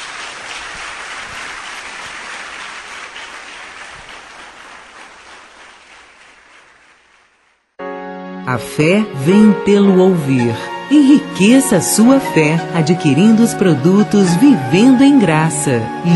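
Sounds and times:
church congregation applauding loudly in praise during a sermon: 0:00.0 - 0:07.7
speech: 0:08.5 - 0:16.1.

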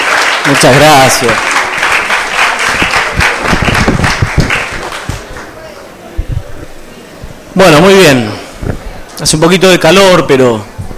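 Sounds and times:
audience applause for a speaker at a Catholic formation course for university students: 0:00.0 - 0:05.8
speech: 0:00.4 - 0:01.6, 0:07.6 - 0:10.7.

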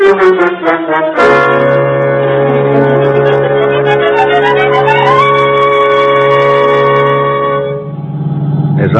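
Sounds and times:
speech: 0:00.2 - 0:01.3
police car siren wailing: 0:01.4 - 0:08.9.

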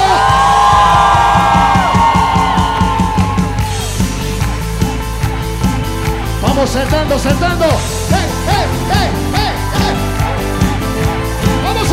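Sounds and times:
sustained cheering and whoops from a worshipping crowd: 0:00.0 - 0:04.0, 0:08.3 - 0:11.9
worshipping crowd at a praise service shouting joyfully: 0:00.0 - 0:04.6, 0:05.2 - 0:11.9
steady rhythmic beat: 0:00.0 - 0:11.9
speech: 0:06.8 - 0:08.0.

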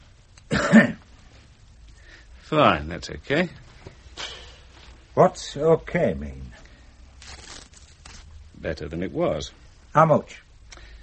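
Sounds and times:
patient coughing during a medical examination: 0:00.5 - 0:01.1
speech: 0:00.7 - 0:01.0, 0:02.5 - 0:03.6, 0:05.2 - 0:06.6, 0:08.6 - 0:10.4.

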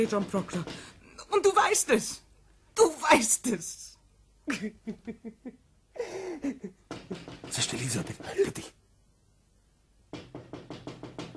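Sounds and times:
knocking on a window: 0:00.0 - 0:00.9, 0:06.7 - 0:08.7, 0:10.1 - 0:11.3
speech: 0:00.0 - 0:02.2, 0:02.8 - 0:03.9, 0:04.5 - 0:08.8
low steady hum: 0:00.0 - 0:10.2.

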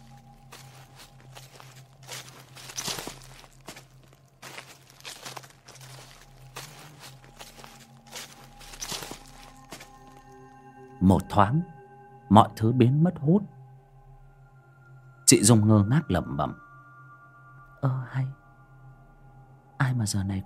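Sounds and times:
shuffling footsteps beside a house: 0:00.0 - 0:10.4
speech: 0:11.0 - 0:13.6, 0:15.3 - 0:16.6, 0:17.8 - 0:18.4, 0:19.8 - 0:20.4.

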